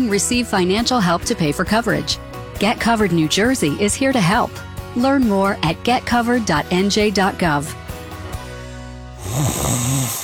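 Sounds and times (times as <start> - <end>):
speech: 0.0 - 7.8, 9.3 - 9.8
person snoring: 9.2 - 10.2.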